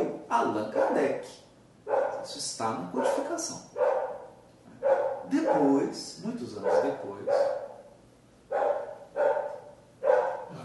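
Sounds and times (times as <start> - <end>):
speech: 0.3 - 3.8, 5.3 - 7.6
dog barking: 0.8 - 1.1, 1.9 - 2.3, 3.0 - 5.9, 6.6 - 10.5.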